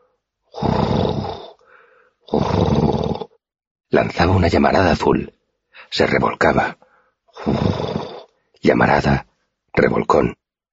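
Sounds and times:
deep rumbling dragon creature growl: 0.6 - 1.6, 2.3 - 3.4, 7.4 - 8.3
quieter rasping breath of dragon creature: 0.6 - 3.4, 6.9 - 8.4
speech: 4.0 - 6.8, 7.4 - 7.8, 8.6 - 10.4.

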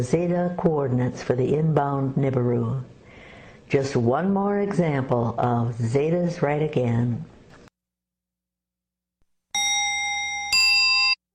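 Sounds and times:
speech: 0.0 - 3.0, 3.7 - 7.3
two-note bell chime: 9.6 - 11.2.

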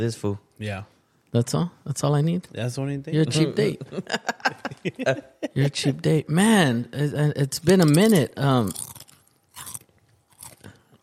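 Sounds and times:
speech: 0.0 - 9.0
laughter: 3.6 - 6.0
crunching potato chips: 7.7 - 11.0.

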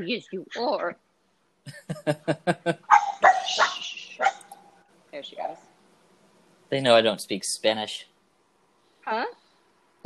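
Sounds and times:
speech: 0.0 - 1.0, 1.6 - 4.3, 6.7 - 8.1, 9.1 - 9.4
laughter: 1.7 - 2.8
dog barking: 2.9 - 4.5.

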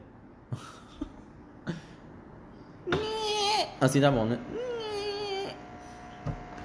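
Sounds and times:
voice imitating an old wine-cellar door creaking open: 2.9 - 3.9, 4.5 - 5.6
speech: 3.8 - 4.7.

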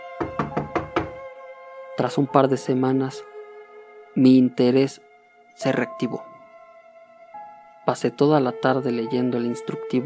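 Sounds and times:
knocking on a door: 0.2 - 1.2
speech: 2.0 - 3.3, 4.2 - 6.3, 7.9 - 10.0.

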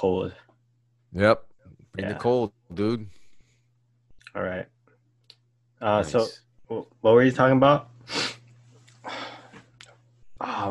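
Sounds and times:
speech: 0.0 - 0.4, 1.1 - 3.2, 4.4 - 4.7, 5.8 - 8.3, 10.4 - 10.6
low steady hum: 0.0 - 10.6
sniff: 8.0 - 9.6
person sneezing from allergies: 8.1 - 8.4.

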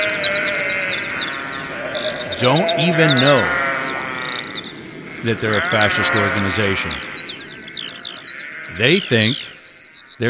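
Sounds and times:
sheep bleating: 0.0 - 4.6, 5.2 - 7.2, 8.2 - 9.0
speech: 2.4 - 3.6, 5.2 - 7.1, 8.8 - 9.6.

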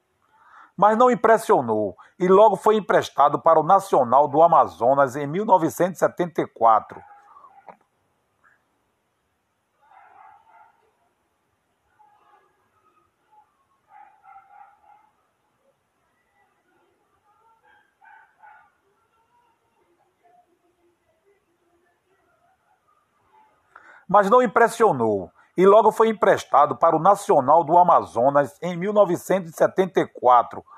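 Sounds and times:
speech: 0.8 - 7.1, 24.1 - 30.7
dog barking: 6.9 - 7.8, 9.8 - 11.0, 13.9 - 15.2, 17.6 - 18.8.

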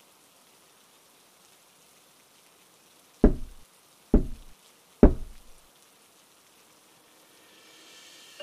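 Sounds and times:
faint hiss: 0.0 - 8.4
heavy knocks on a wooden door: 3.2 - 3.6, 4.2 - 5.6.

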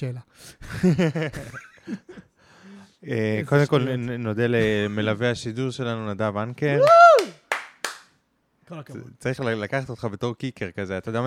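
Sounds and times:
speech: 0.0 - 2.3, 3.0 - 7.3, 8.7 - 11.2
laughter: 0.7 - 2.2
falling vocal whoop: 6.8 - 7.4
sharp hand claps: 6.8 - 8.2.

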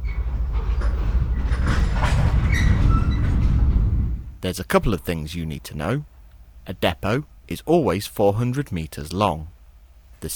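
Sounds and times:
high metallic squeals from train wheels: 0.0 - 3.8
rhythmic clacking of train on rails: 0.0 - 4.4
train rolling along the rails with a low rumble: 0.0 - 5.2
speech: 4.4 - 9.6, 10.2 - 10.3.

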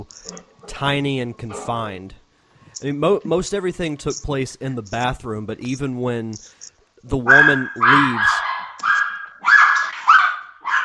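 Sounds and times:
speech: 0.0 - 2.2, 2.8 - 8.4
dog barking and whining: 7.3 - 10.8.

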